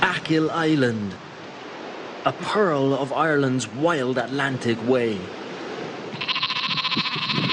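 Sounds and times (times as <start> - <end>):
speech: 0.1 - 1.3, 2.3 - 5.4
sheep bleating on an island farm on Ireland's Atlantic coast: 6.1 - 7.5.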